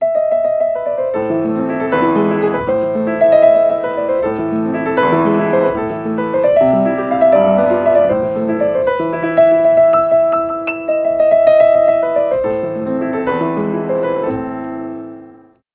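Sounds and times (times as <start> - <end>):
piano hold music: 0.0 - 15.7.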